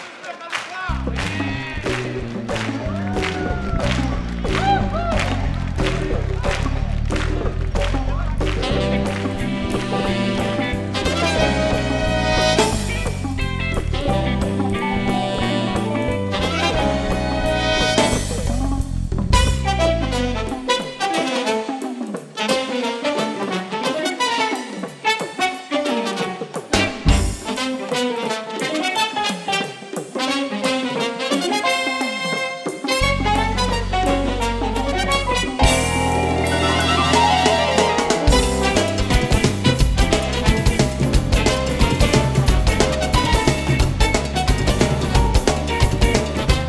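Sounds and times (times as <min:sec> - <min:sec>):
afro swing music: 0:00.6 - 0:46.6.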